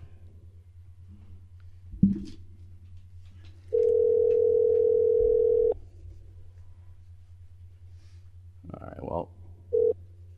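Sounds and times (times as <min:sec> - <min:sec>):
telephone dial tone: 0:03.7 - 0:05.8, 0:09.8 - 0:10.0.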